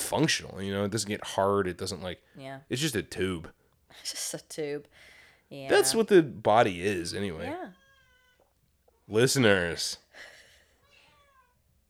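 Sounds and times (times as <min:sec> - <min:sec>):
speech: 0:00.1 - 0:07.8, 0:09.1 - 0:10.3
cat yowling: 0:07.6 - 0:08.5, 0:10.8 - 0:11.6.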